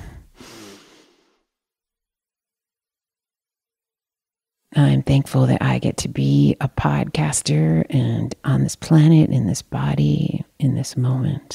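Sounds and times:
deep inhale taken together during a gratitude breathing moment: 0:00.0 - 0:01.6
speech: 0:04.7 - 0:11.5.

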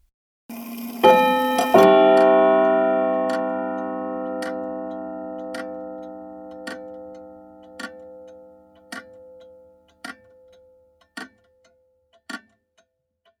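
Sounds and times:
grandfather clock striking the hour with a resonant chime: 0:00.5 - 0:09.4
grandfather clock ticking: 0:00.7 - 0:13.3.

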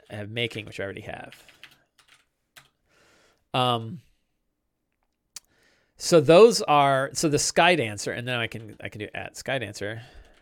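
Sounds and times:
speech: 0:00.1 - 0:01.6, 0:03.5 - 0:04.1, 0:06.0 - 0:10.2
computer keyboard typing: 0:00.5 - 0:02.8, 0:08.4 - 0:09.1, 0:10.2 - 0:10.4.

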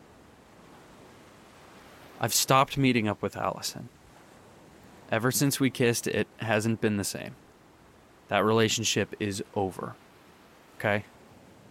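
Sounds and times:
ocean surf washing onto a shore: 0:00.0 - 0:11.7
speech: 0:02.2 - 0:04.0, 0:05.1 - 0:07.4, 0:08.3 - 0:10.0, 0:10.8 - 0:11.1.

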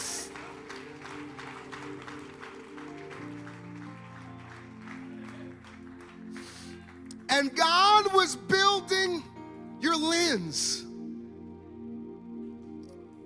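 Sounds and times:
audience clapping at a church service: 0:00.0 - 0:08.8
organ or keyboard chords: 0:00.0 - 0:13.2
speech: 0:07.3 - 0:10.8.

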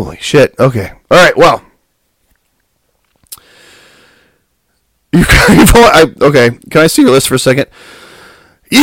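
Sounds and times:
speech: 0:00.0 - 0:01.7, 0:05.1 - 0:08.0
slow heavy exhale of breath: 0:03.4 - 0:04.4, 0:07.7 - 0:08.6.

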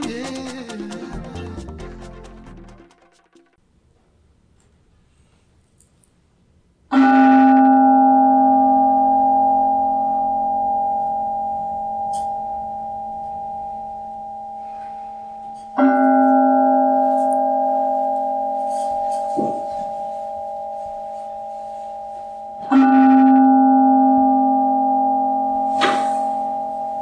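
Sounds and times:
resonant bell struck and ringing: 0:06.9 - 0:26.9.

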